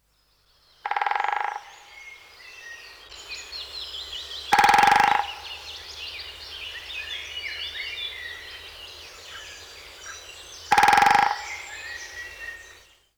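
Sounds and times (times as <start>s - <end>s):
Great Spotted Woodpecker drumming: 0.8s - 2.2s, 4.2s - 6.0s, 10.0s - 12.8s.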